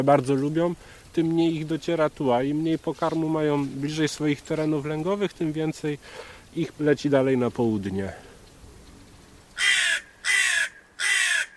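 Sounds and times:
speech: 0:00.0 - 0:08.3
hooded crow cawing: 0:09.6 - 0:11.5.

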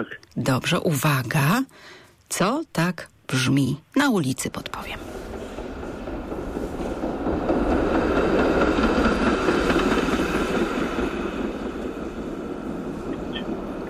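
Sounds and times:
speech: 0:00.0 - 0:05.2
tram rumbling past on a street: 0:03.4 - 0:13.8.

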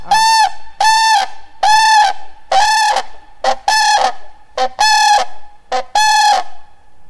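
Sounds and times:
tame captive common crane giving greeting call at animal rehabilitation centre: 0:00.0 - 0:06.8.

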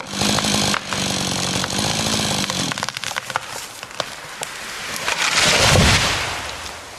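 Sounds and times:
chainsaw cutting into a tree in a forest: 0:00.0 - 0:06.2
heavy crashing rumble: 0:05.0 - 0:06.9.

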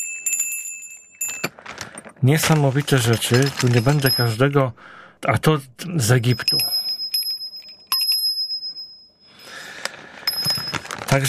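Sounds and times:
tiny souvenir bell ringing: 0:00.0 - 0:01.5, 0:03.3 - 0:04.6, 0:06.2 - 0:11.2
speech: 0:02.2 - 0:06.8.

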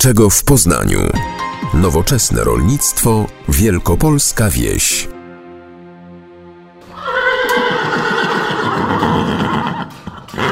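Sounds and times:
speech: 0:00.0 - 0:05.2
grey horse neighing: 0:06.9 - 0:10.5.

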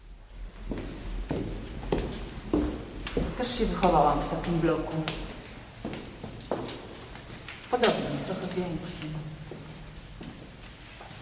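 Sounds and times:
low noise: 0:00.0 - 0:11.2
footsteps climbing the stairs of an apartment block stairwell: 0:00.7 - 0:07.4
speech: 0:03.2 - 0:05.3, 0:07.8 - 0:09.3.

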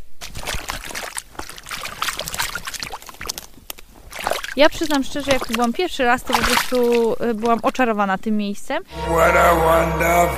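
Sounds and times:
water splashing and trickling: 0:00.0 - 0:08.2
speech: 0:04.6 - 0:10.3.

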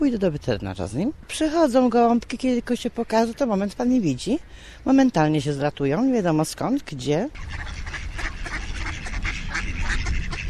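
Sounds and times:
speech: 0:00.0 - 0:08.6
ducks quacking while being fed in Kalisz: 0:07.3 - 0:10.4.

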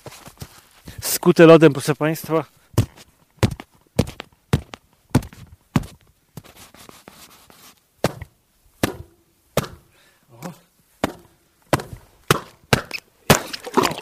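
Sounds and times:
crunching footsteps down a slippery bank to an icy reservoir in Notecka Forest, Poland: 0:00.0 - 0:06.5, 0:11.0 - 0:14.0
speech: 0:01.2 - 0:02.6.

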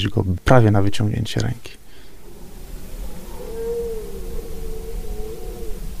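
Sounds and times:
speech: 0:00.0 - 0:01.8
red deer stags roaring during the rut: 0:02.1 - 0:05.9.

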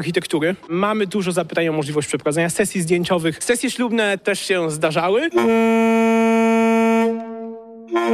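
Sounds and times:
speech: 0:00.0 - 0:06.4
locomotive horn blasts: 0:05.4 - 0:08.1.

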